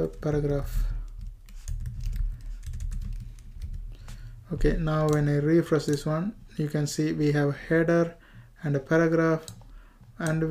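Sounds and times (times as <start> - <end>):
speech: 0.0 - 1.0, 4.5 - 9.6, 10.2 - 10.4
fingers typing on a computer keyboard: 0.0 - 6.1, 9.4 - 10.4.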